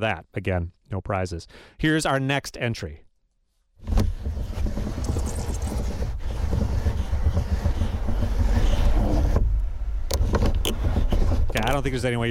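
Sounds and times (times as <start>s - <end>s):
speech: 0.0s - 3.0s, 3.8s - 4.2s, 11.6s - 12.2s
car window being cranked by hand: 3.8s - 11.9s.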